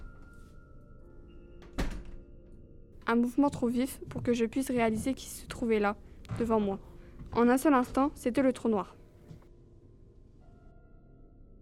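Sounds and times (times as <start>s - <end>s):
door opening with a solid dull thunk: 1.6s - 2.2s
speech: 3.1s - 9.0s.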